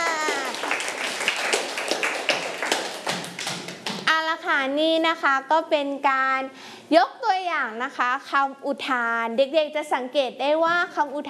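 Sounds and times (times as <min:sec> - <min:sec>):
applause: 0:00.0 - 0:04.1
speech: 0:04.6 - 0:11.2.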